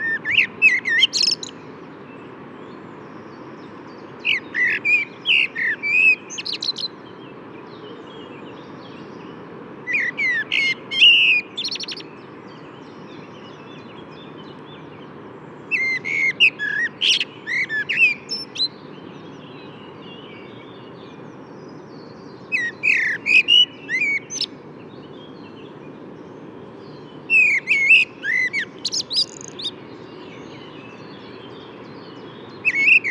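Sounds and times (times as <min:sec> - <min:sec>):
common blackbird singing fluting phrases: 0:00.0 - 0:02.8, 0:03.9 - 0:33.0.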